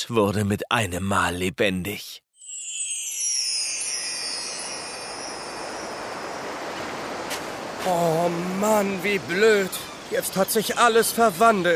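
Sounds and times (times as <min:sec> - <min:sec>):
speech: 0:00.1 - 0:02.2, 0:07.8 - 0:11.7
gusting wind: 0:03.4 - 0:11.7
wind-whipped ocean waves churning: 0:04.5 - 0:11.7.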